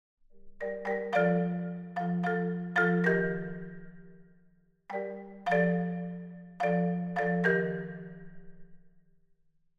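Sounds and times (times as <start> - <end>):
marimba: 0.3 - 9.0.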